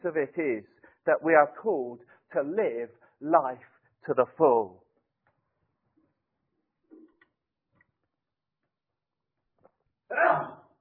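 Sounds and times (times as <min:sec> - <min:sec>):
speech: 0:00.0 - 0:04.8, 0:10.1 - 0:10.6
sneeze: 0:10.1 - 0:10.7.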